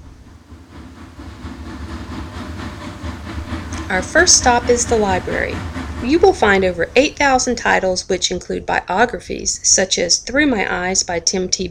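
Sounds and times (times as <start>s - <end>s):
train wheels clacking on rails: 0.0s - 8.4s
train rumbling: 0.0s - 11.6s
speech: 3.9s - 11.6s.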